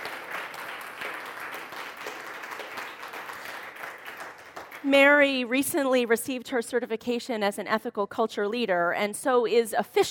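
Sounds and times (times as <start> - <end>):
ethical culture audience applauding: 0.0 - 4.9
speech: 4.8 - 10.0.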